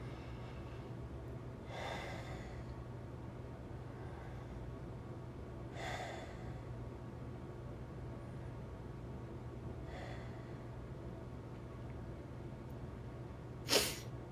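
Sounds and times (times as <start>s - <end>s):
slow deep breaths in and out: 0.0s - 1.0s, 1.6s - 2.9s, 3.8s - 4.8s, 5.7s - 6.8s, 9.8s - 10.8s
steady low hum: 0.0s - 14.3s.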